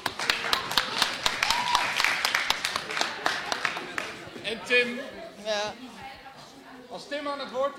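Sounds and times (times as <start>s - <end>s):
scattered cheering voices: 0.0s - 4.1s
crowd applauding with dense irregular hand claps: 0.0s - 4.2s
speech: 4.7s - 5.9s, 6.9s - 7.7s.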